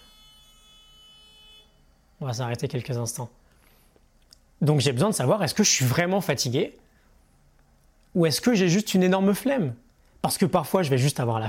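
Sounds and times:
faint car horns honking outside: 0:00.0 - 0:02.0
speech: 0:02.2 - 0:03.4, 0:04.6 - 0:06.8, 0:08.2 - 0:11.4.

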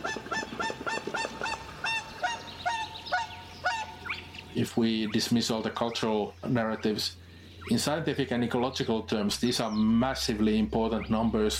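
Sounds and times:
whooper swans honking at a rewilding site: 0:00.0 - 0:04.5
speech: 0:04.6 - 0:11.5.

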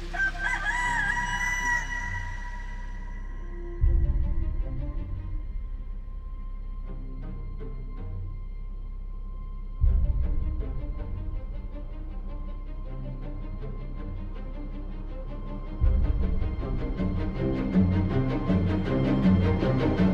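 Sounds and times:
steady low rumble: 0:00.0 - 0:20.1
rooster crowing at dawn across a dark river: 0:00.1 - 0:03.7.

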